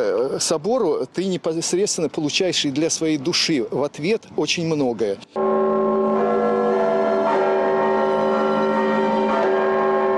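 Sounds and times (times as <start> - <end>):
speech: 0.0 - 5.4
largest church bell in Penza tolling: 5.4 - 10.1.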